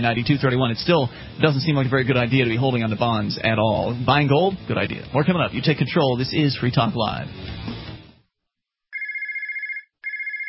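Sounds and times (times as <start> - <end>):
speech: 0.0 - 7.8
telephone ringing with a steady electronic trill: 8.9 - 10.4.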